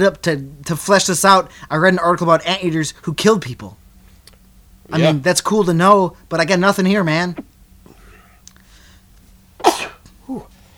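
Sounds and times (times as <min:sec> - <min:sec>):
speech: 0:00.0 - 0:03.8, 0:04.9 - 0:07.5, 0:10.3 - 0:10.5
person sneezing: 0:09.6 - 0:10.6.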